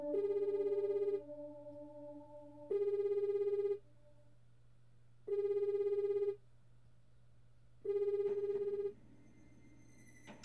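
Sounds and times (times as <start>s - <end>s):
phone line ringing on an outgoing call: 0.1s - 1.2s, 2.7s - 3.8s, 5.3s - 6.3s, 7.9s - 8.9s.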